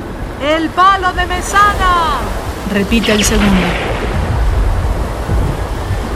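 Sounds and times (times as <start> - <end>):
speech: 0.4 - 4.0
rolling thunder: 2.4 - 6.1.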